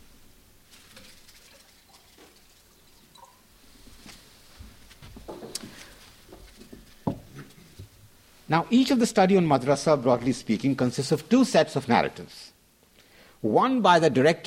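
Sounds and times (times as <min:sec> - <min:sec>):
water poured into a glass: 0:00.8 - 0:03.5
speech: 0:08.5 - 0:12.6, 0:13.4 - 0:14.4.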